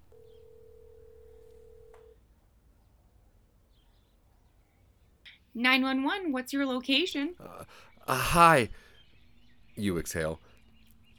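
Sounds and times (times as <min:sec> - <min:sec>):
cell phone dialing tone: 0:00.0 - 0:02.2
faint birds chirping: 0:00.0 - 0:11.1
click: 0:01.5 - 0:02.1
speech: 0:05.6 - 0:08.8, 0:09.8 - 0:10.5.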